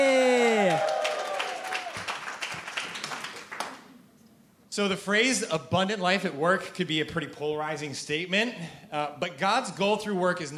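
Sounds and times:
audience applause: 0.0s - 3.8s
speech: 4.8s - 10.5s.

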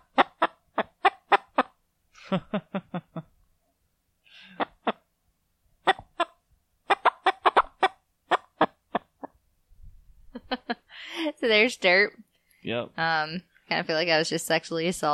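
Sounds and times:
hen clucking while being handled: 0.0s - 1.8s, 4.5s - 5.1s, 5.8s - 9.4s
speech: 2.3s - 3.3s, 11.4s - 15.1s
soft breathy sounds: 4.2s - 4.9s.

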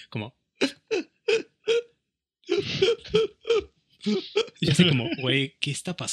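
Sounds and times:
speech: 0.0s - 0.8s, 2.6s - 6.1s
voice imitating seal-like gasping sobs of a crying woman: 0.6s - 1.9s, 2.5s - 5.2s
laughter: 2.5s - 5.4s.

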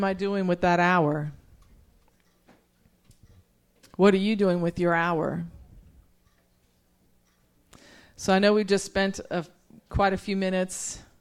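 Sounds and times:
speech: 0.0s - 1.4s, 4.0s - 5.6s, 8.2s - 11.0s
low hum: 0.0s - 11.1s
clock ticking in a prayer room: 1.6s - 4.0s, 6.2s - 6.6s, 7.2s - 7.5s.

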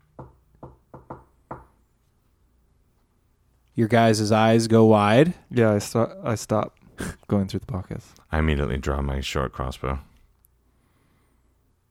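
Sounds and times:
secret knock pattern on a door: 0.2s - 1.7s
speech: 3.8s - 10.1s.

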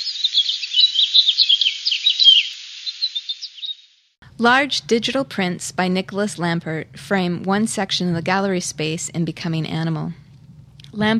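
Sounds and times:
many small birds chirping and twittering in an aviary inside a gallery: 0.0s - 3.9s
speech: 4.4s - 10.2s, 10.9s - 11.1s.

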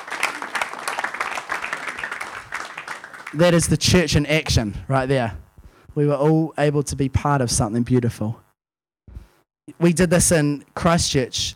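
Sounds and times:
crowd applauding: 0.0s - 3.7s
speech: 3.3s - 5.4s, 6.0s - 8.4s, 9.8s - 11.5s.

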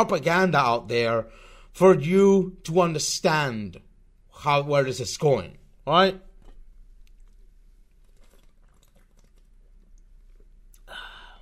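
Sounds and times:
speech: 0.0s - 3.8s, 4.4s - 6.3s
person sipping a drink: 6.4s - 11.4s
slurping: 6.4s - 11.4s
soft wet mouth clicks and smacks: 6.4s - 11.4s.

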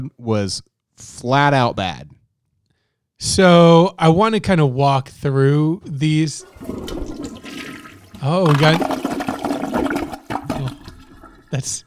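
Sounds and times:
speech: 0.0s - 2.2s, 3.2s - 7.1s, 8.2s - 9.0s, 11.5s - 11.8s
toilet flushing: 6.3s - 11.8s.

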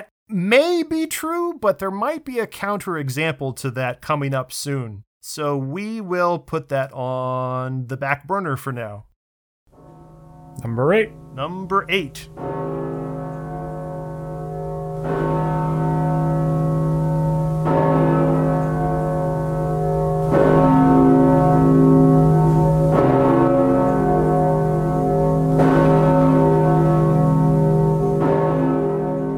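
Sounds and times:
speech: 0.3s - 9.1s, 10.6s - 13.0s, 15.0s - 15.4s
huge deep bourdon church bell tolling: 9.7s - 29.3s.

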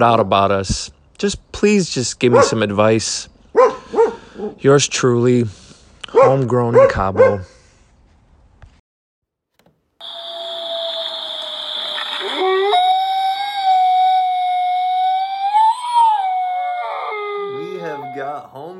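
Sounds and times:
speech: 0.0s - 3.7s, 4.4s - 7.6s
dog howling: 10.0s - 18.7s.

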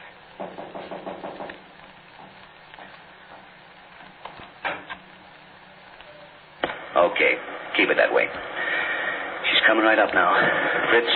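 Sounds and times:
knocking on a door: 0.4s - 1.6s
footsteps: 0.4s - 5.0s
speech: 7.0s - 8.5s, 9.6s - 11.1s.

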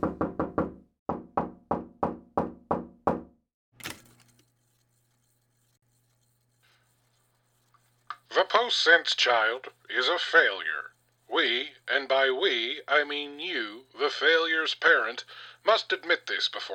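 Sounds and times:
firm knocking on a closed door: 0.0s - 3.4s
speech: 8.4s - 10.7s, 11.3s - 16.7s.

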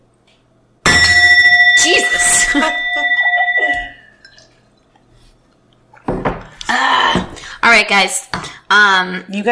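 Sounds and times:
gong struck hard: 0.9s - 4.2s
speech: 2.5s - 3.1s, 7.7s - 9.5s.

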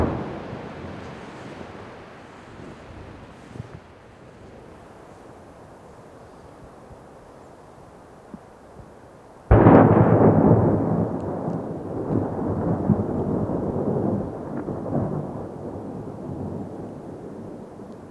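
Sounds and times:
explosive blast set off for avalanche control: 0.0s - 1.4s, 9.5s - 15.0s.

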